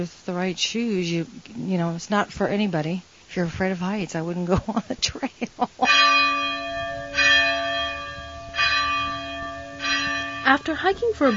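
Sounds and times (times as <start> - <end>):
speech: 0.0 - 6.3, 10.5 - 11.3
local church bells ringing in Vernazza: 5.9 - 11.3.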